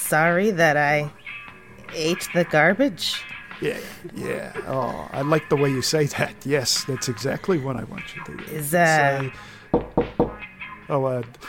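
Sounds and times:
speech: 0.1 - 1.2, 1.9 - 10.1, 10.9 - 11.4
sharp knocks on an office door: 9.7 - 10.4.

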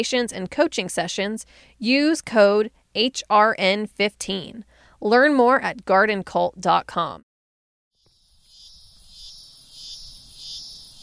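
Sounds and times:
speech: 0.0 - 7.3
cicadas buzzing on the east coast of the U.S.: 8.0 - 11.0.

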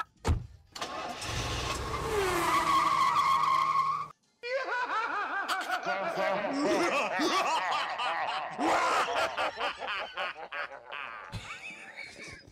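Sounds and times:
car skidding with loud tire squeals: 0.8 - 4.1
car revving: 0.9 - 4.0
snickering laughter: 4.4 - 12.5.

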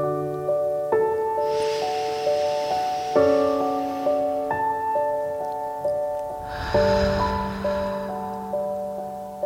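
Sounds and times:
gentle sustained musical notes: 0.0 - 9.4
deep breathing in through the nose and out through the mouth: 1.4 - 4.8, 6.4 - 8.9.

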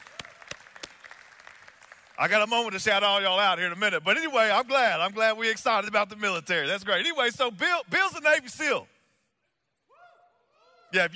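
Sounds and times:
audience applause: 0.0 - 2.7
speech: 2.2 - 8.9, 10.9 - 11.1.

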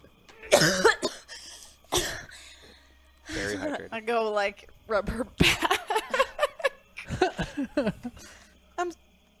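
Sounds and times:
person imitating a wet retching cough of coughing up lake water: 0.5 - 1.3
speech: 4.0 - 6.2, 7.6 - 9.0
laughter: 5.4 - 8.3.

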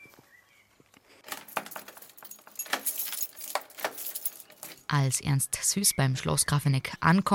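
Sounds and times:
lock of Grafeneck Castle gate scraping and rattling: 1.2 - 4.9
metallic keys jangling and clinking: 1.3 - 4.9
speech: 4.9 - 7.3.

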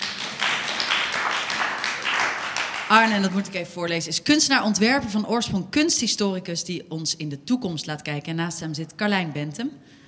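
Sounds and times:
audience applause: 0.0 - 3.0
speech: 2.9 - 10.0.

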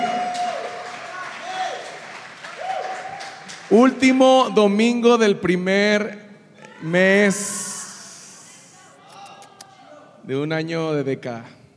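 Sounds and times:
church audience applauding: 0.0 - 4.2
speech: 3.7 - 6.2, 6.8 - 7.6, 10.3 - 11.6.

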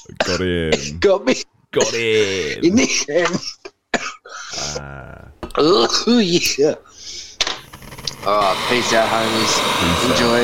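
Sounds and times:
person coughing: 0.0 - 1.1, 1.8 - 4.9
speech: 0.0 - 3.6, 5.6 - 7.2, 8.2 - 10.4.

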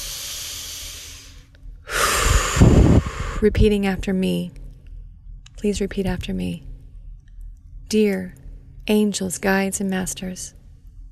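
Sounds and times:
deep breath: 0.0 - 3.5
speech: 3.4 - 4.6, 5.6 - 6.7, 7.9 - 10.6.

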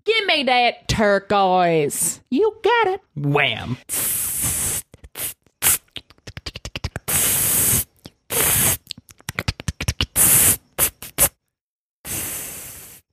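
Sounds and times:
speech: 0.3 - 4.2
spray paint hissing out of a can: 3.9 - 5.8, 7.1 - 8.8, 10.2 - 11.3, 12.1 - 13.0.

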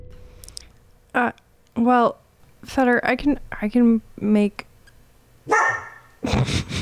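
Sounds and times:
speech: 1.2 - 4.7, 6.3 - 6.7
dog barking: 5.5 - 6.1.

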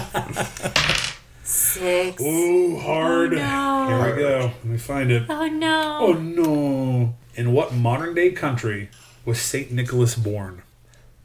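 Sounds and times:
dice clattering across a hard surface: 0.7 - 1.2
speech: 1.8 - 10.7.

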